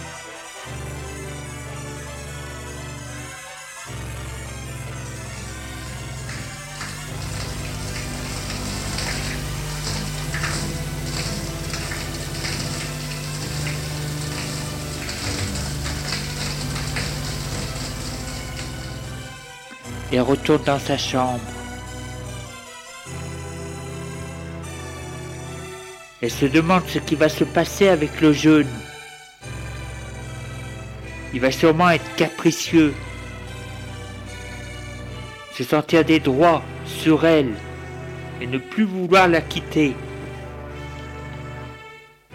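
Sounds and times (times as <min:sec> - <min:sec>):
low pipe hum: 0:04.5 - 0:20.3
shower running in a bathroom: 0:05.3 - 0:19.5
speech: 0:20.2 - 0:21.6, 0:26.2 - 0:28.9, 0:31.3 - 0:33.1, 0:35.6 - 0:37.6, 0:38.4 - 0:40.0.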